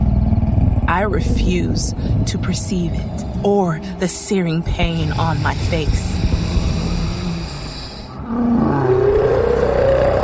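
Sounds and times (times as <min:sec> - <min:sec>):
dense low roar: 0:00.0 - 0:10.2
speech: 0:00.9 - 0:06.4
creature roaring: 0:06.2 - 0:10.2.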